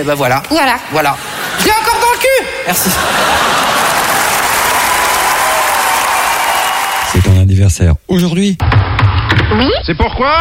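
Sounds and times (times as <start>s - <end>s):
speech: 0.0s - 1.9s, 2.6s - 3.7s, 7.6s - 8.8s, 9.5s - 10.3s
laughter: 1.1s - 5.1s
crowd clapping loudly: 2.9s - 7.4s.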